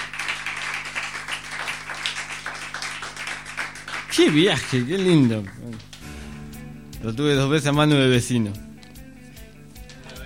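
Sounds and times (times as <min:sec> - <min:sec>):
audience applause at a poetry night: 0:00.0 - 0:06.1
low constant hum: 0:00.0 - 0:10.2
speech: 0:04.1 - 0:05.9, 0:07.0 - 0:08.7.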